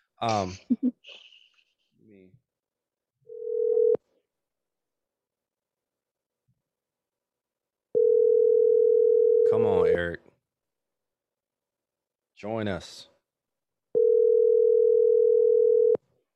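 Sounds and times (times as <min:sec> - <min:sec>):
voice: 0:00.2 - 0:00.6
speech: 0:00.2 - 0:01.3, 0:09.5 - 0:10.2, 0:12.4 - 0:13.1
ringback tone of an unanswered outgoing phone call: 0:03.3 - 0:04.0, 0:08.0 - 0:09.5, 0:14.0 - 0:16.0.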